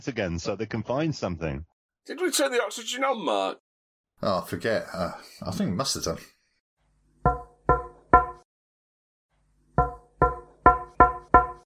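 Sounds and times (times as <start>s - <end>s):
speech: 0.0s - 3.6s, 4.2s - 6.3s
sharp knocks: 7.3s - 8.4s, 9.8s - 11.6s.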